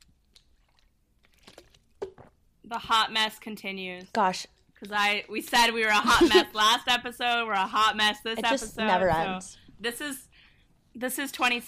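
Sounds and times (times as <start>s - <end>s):
person sipping water: 0.0s - 2.4s
speech: 2.7s - 10.3s, 11.0s - 11.6s.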